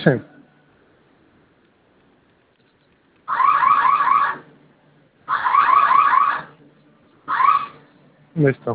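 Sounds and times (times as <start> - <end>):
home security alarm sounding from keypad with warbling siren tone: 3.3 - 4.4, 5.3 - 6.5.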